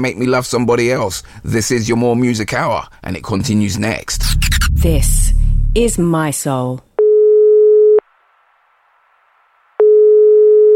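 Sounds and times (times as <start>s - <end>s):
speech: 0.0s - 6.9s
telephone line tone before voicemail: 7.0s - 8.0s, 9.8s - 10.7s.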